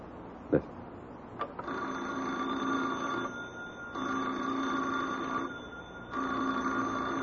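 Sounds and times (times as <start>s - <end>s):
old-fashioned telephone bell ringing: 1.6s - 7.2s.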